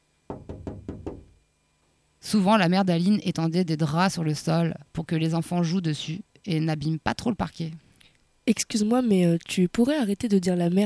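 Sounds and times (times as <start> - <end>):
firm knocking on a door: 0.3 - 1.4
speech: 2.2 - 7.8, 8.5 - 10.8.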